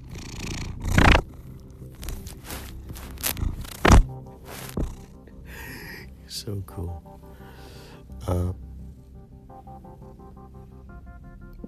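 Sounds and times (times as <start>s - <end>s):
contented cats purring: 0.0s - 6.0s
scraping noises: 2.0s - 5.1s
thumps: 2.6s - 5.0s
speech: 6.4s - 7.2s, 8.3s - 8.6s.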